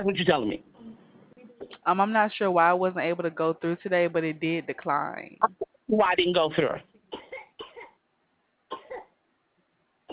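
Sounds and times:
speech: 0.0 - 0.7, 1.8 - 6.9
person coughing harshly: 7.2 - 8.0, 8.7 - 9.1.

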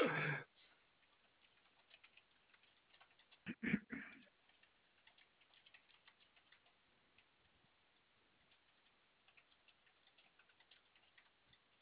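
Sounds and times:
customer service agent typing on a keyboard: 1.0 - 3.5, 4.2 - 7.3, 8.4 - 11.8.

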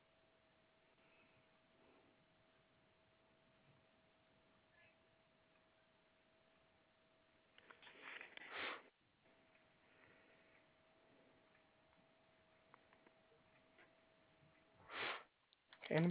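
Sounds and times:
faint steady hum: 0.0 - 16.0
nasal sniffles: 8.1 - 8.9, 14.8 - 15.3.

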